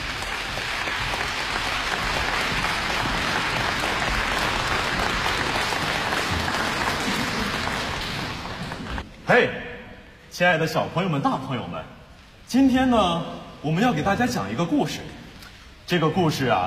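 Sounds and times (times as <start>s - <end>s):
audience applause welcoming the conductor at an orchestral concert: 0.0s - 9.0s
speech: 9.3s - 9.6s, 10.4s - 15.2s, 15.9s - 16.6s.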